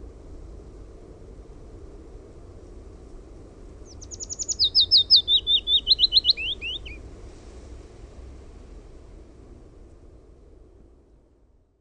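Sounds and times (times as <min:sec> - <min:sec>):
low background rumble: 0:00.0 - 0:11.7
Willow warbler singing: 0:03.9 - 0:07.0.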